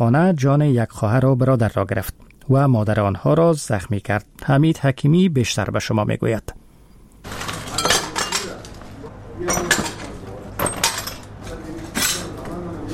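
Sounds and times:
speech: 0:00.0 - 0:06.6, 0:09.4 - 0:09.8
steady low noise: 0:00.0 - 0:12.9
broken glass shards clinking and scraping as people gather them up in a rocket-damaged house: 0:07.3 - 0:08.7, 0:09.5 - 0:11.3.

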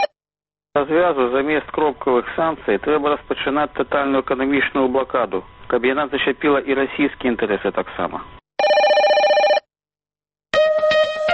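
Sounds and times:
speech: 0:00.8 - 0:08.4
telephone ringing with an electronic trill: 0:08.6 - 0:09.7.

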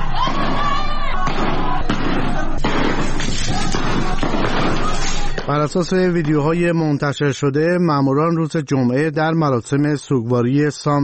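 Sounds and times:
dense crowd of protesters shouting in Iranshahr Iran: 0:00.0 - 0:05.9
gunshots from security forces at a street protest in Iranshahr Iran: 0:00.0 - 0:06.5
speech: 0:05.5 - 0:11.0.

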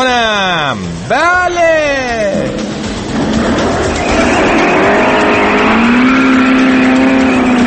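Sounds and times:
speech: 0:00.0 - 0:02.1
very worn Paykan car engine running loudly above 80 decibels: 0:02.3 - 0:07.6.

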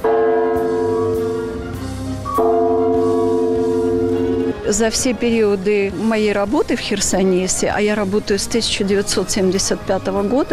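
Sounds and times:
large bell tolling at noon at the Chersonesus Taurica reserve: 0:00.0 - 0:05.0
speech: 0:04.7 - 0:10.5.

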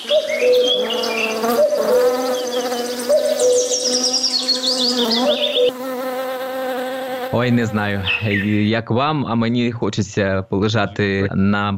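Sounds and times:
high bird chirps and tweets: 0:00.0 - 0:06.1, 0:07.3 - 0:11.7
bees buzzing at a beehive: 0:00.0 - 0:08.6
speech: 0:07.4 - 0:11.7.

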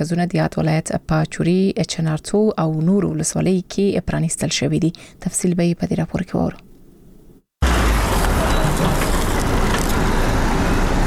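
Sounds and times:
speech: 0:00.0 - 0:06.6
motor vehicles loaded with medical supplies driving in Uruzgan province Afghanistan: 0:07.6 - 0:11.0.

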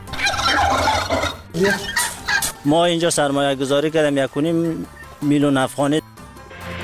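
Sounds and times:
turkeys gobbling on a turkey breeding farm in Takhar, Afghanistan: 0:00.0 - 0:02.6
speech: 0:01.6 - 0:02.0, 0:02.6 - 0:06.2.

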